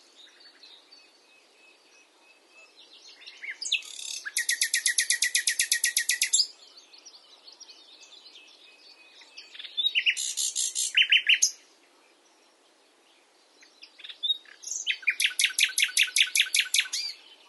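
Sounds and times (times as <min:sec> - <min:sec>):
common nightingale Luscinia megarhynchos song: 0:00.0 - 0:17.4.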